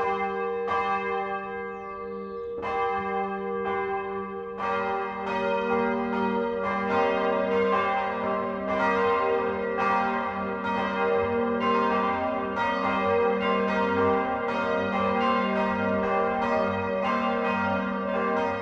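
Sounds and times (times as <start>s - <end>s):
village church bells ringing the noon bell: 0.0s - 18.6s.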